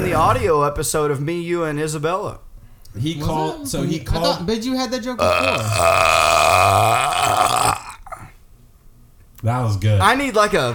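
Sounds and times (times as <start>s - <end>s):
speech: 0.0s - 7.7s, 9.4s - 10.7s
long loud low croaking burp: 5.2s - 8.3s.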